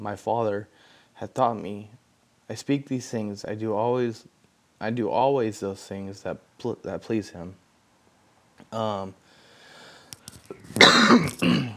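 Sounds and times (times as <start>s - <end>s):
speech: 0.0s - 7.6s, 8.7s - 9.2s, 10.5s - 11.7s
faint breathing: 0.7s - 1.2s, 9.2s - 10.3s
person clearing throat: 10.5s - 11.7s
harsh loud coughs: 10.6s - 11.7s.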